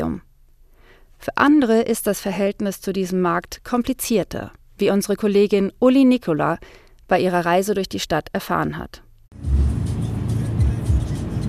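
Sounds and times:
speech: 1.2 - 9.6
small bus engine rumbling while driving through Lomé, Togo: 9.4 - 11.4.

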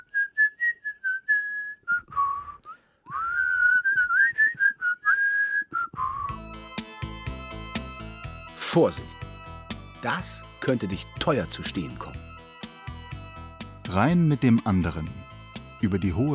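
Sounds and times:
person whistling a wavering tune: 0.0 - 6.6
instrumental music: 6.2 - 16.3
speech: 8.7 - 9.2, 10.0 - 12.3, 13.9 - 15.2, 15.8 - 16.3.

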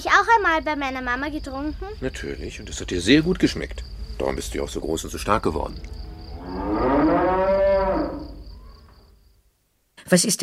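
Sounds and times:
speech: 0.0 - 6.8, 10.1 - 10.4
faint outdoor noise: 0.0 - 10.4
cow mooing loudly: 6.0 - 8.7.

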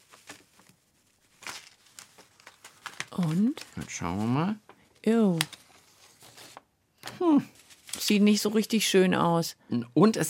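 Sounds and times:
paper with glued pasta pressed onto an ink pad and printed onto a sheet: 0.0 - 6.6, 7.5 - 8.3
speech: 3.1 - 5.6, 7.2 - 10.2.

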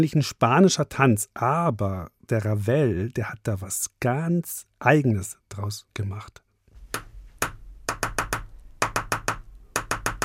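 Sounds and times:
speech: 0.0 - 6.4
rhythmic crisp knocking: 7.4 - 10.2.

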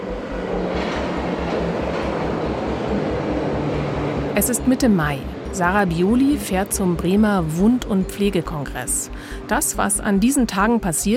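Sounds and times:
wheels thumping over track joints: 0.0 - 4.3
train rolling along the rails: 0.0 - 9.6
speech: 4.4 - 11.1.

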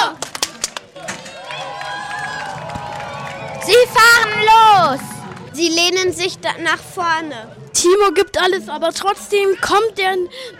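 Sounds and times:
sharp claps: 0.1 - 3.9
crowd of race spectators cheering and shouting for a competitor: 1.0 - 6.3
speech: 3.7 - 10.5.

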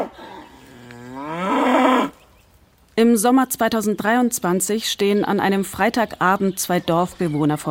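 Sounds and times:
emaciated cow bellowing loudly on a farm track: 0.0 - 2.2
speech: 3.0 - 7.6.

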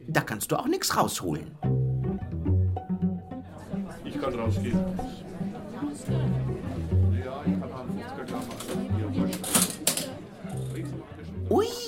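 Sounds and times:
speech: 0.1 - 1.8, 4.2 - 7.6, 11.5 - 11.8
people chattering: 3.2 - 11.8
old mechanical cash register clacking at a theatre selling admission tickets: 8.3 - 10.8.

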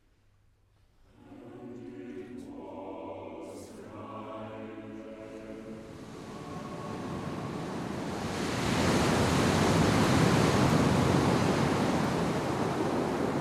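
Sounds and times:
raging foaming sea waves surging: 3.8 - 13.3.

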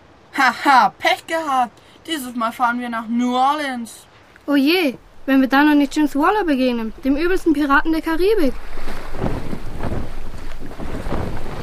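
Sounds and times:
speech: 0.4 - 9.2
gusting wind around a sailing ship off the Jamaican coast: 4.9 - 11.6
sea swells surging around a sailing ship off the Jamaican coast: 5.0 - 11.6.

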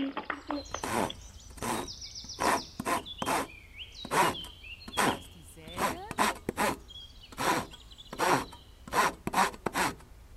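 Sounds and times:
faint bird chirps: 0.0 - 5.8, 6.8 - 8.8
hand saw cutting through wood: 0.6 - 10.1.

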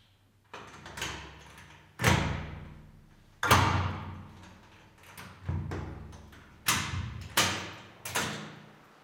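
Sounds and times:
heavy cell door being opened with metallic clunks and thuds: 0.5 - 8.8.

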